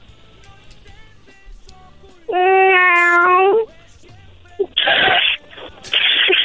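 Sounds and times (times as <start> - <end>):
person imitating a cat hissing: 2.3 - 3.7, 4.6 - 6.4
person imitating a cat meow: 2.3 - 3.7.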